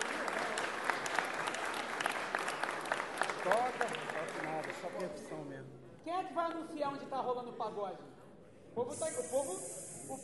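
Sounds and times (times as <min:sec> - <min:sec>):
room full of people applauding: 0:00.0 - 0:05.2
speech: 0:04.6 - 0:08.2, 0:08.8 - 0:10.2.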